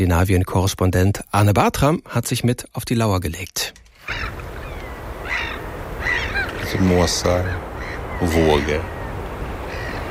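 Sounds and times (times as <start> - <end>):
speech: 0.0 - 4.4, 6.7 - 9.0
gulls crying on the coast: 4.0 - 10.1
surf rolling along the shore: 4.1 - 10.1.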